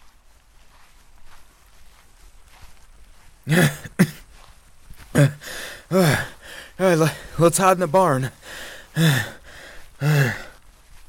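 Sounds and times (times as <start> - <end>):
speech: 3.4 - 3.8, 6.9 - 8.4, 9.0 - 9.4, 10.0 - 10.4
person panting out of breath while hiding in a barn: 3.4 - 7.4, 8.2 - 11.0.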